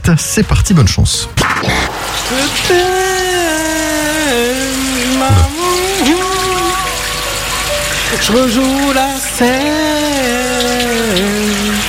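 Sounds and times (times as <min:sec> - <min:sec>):
speech: 0:00.1 - 0:02.9, 0:08.1 - 0:11.6
shower running: 0:01.8 - 0:11.8
man singing a wavering melody: 0:02.3 - 0:07.0, 0:08.1 - 0:11.8.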